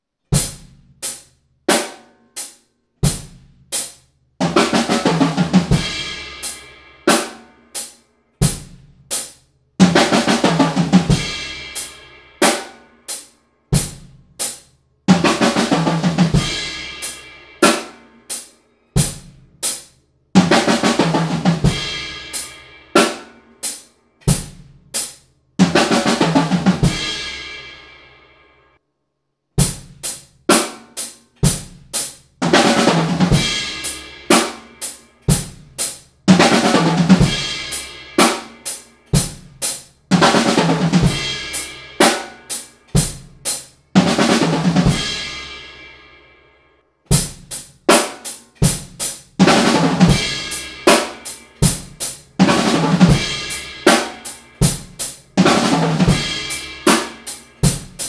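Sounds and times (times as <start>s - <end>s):
drum break in eighth-note triplets: 0.3s - 27.4s, 29.6s - 45.4s, 47.1s - 58.0s.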